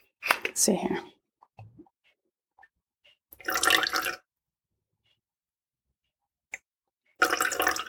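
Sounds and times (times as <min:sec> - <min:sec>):
speech: 0:00.6 - 0:01.1
apple cider vinegar pouring and splashing: 0:03.4 - 0:04.2, 0:07.2 - 0:07.8.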